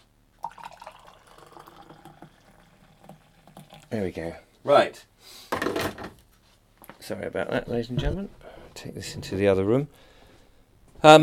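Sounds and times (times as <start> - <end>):
hot water from a just-boiled kettle pouring into a cup of coffee with milk: 0.4 - 4.1
speech: 3.9 - 6.0, 7.0 - 10.1, 11.0 - 11.2.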